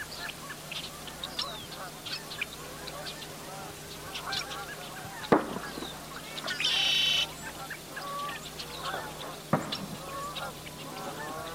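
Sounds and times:
geese honking at sunrise: 0.0s - 11.5s
small birds chirping: 0.0s - 11.5s
steady low hum: 0.0s - 11.5s
sharp pops: 5.3s - 6.0s, 9.5s - 10.0s.

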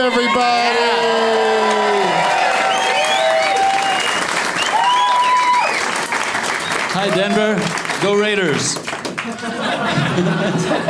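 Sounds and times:
speech: 0.0s - 0.9s
audience whooping and shouting: 0.0s - 7.6s
live audience applauding: 0.8s - 10.6s
laughter: 9.2s - 10.8s.

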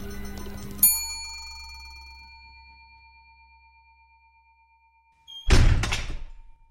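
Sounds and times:
bright chime ringing: 0.0s - 5.4s
heavy front doors of a hotel slamming shut: 5.4s - 6.5s.

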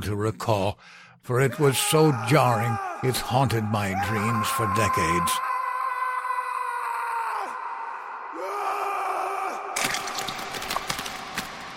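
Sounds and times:
speech: 0.1s - 5.5s
male inmate screaming in agony: 1.4s - 9.8s.

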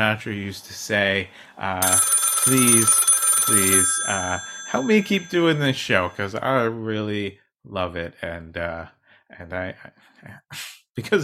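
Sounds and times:
speech: 0.0s - 11.2s
telephone ringing: 1.8s - 6.6s.

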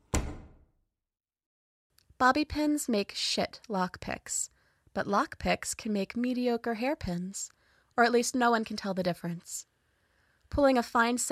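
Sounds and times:
office door thudding shut: 0.0s - 0.8s
speech: 2.2s - 9.7s, 10.5s - 11.3s.

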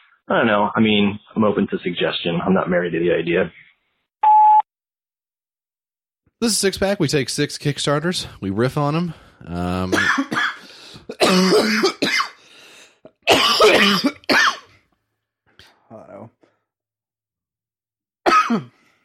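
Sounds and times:
speech: 0.3s - 3.7s, 6.4s - 10.4s, 11.3s - 12.0s, 13.6s - 14.4s
person coughing and sputtering after a drink down the wrong pipe: 9.9s - 12.4s, 13.2s - 14.7s, 18.3s - 18.8s
faint wheezy breath: 10.6s - 11.1s, 12.4s - 13.0s.

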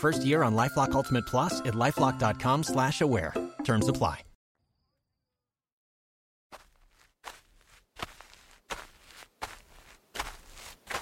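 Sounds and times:
speech: 0.0s - 4.3s
crunchy footsteps walking into a militia tent area: 6.5s - 11.0s.

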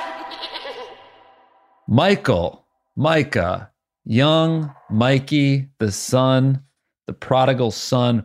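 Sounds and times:
goat bleating: 0.2s - 1.1s
speech: 1.9s - 8.2s.

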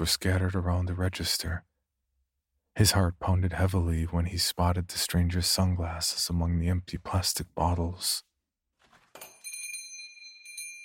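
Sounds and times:
speech: 0.0s - 1.7s, 2.8s - 8.3s
door chime ringing at a shop entrance: 9.2s - 10.8s.

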